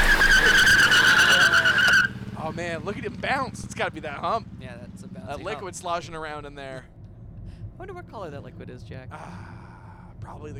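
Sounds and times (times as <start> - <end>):
car tires screeching: 0.0 - 4.6
roaring car engine: 0.0 - 5.3
speech: 2.6 - 7.0, 7.8 - 9.6, 10.2 - 10.5.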